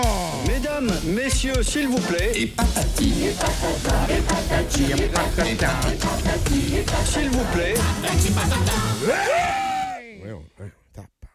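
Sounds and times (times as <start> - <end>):
noisy crowded background: 0.0 - 10.6
speech: 0.8 - 9.6
person shouting excitedly: 9.0 - 10.2.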